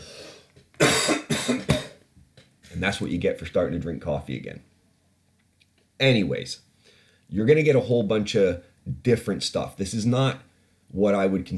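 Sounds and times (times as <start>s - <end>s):
quiet breath: 0.0s - 0.6s, 6.7s - 7.3s, 10.4s - 11.0s
harsh broadband coughs: 0.8s - 2.0s
speech: 2.8s - 4.7s, 6.0s - 6.7s, 7.3s - 11.5s.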